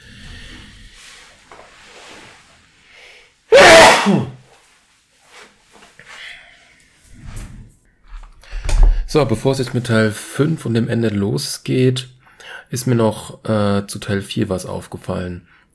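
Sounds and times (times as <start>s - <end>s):
quiet breathing: 0.0s - 3.4s, 6.0s - 9.2s, 12.2s - 12.8s
person sneezing: 3.5s - 4.4s
speech: 4.0s - 4.3s, 9.1s - 15.6s.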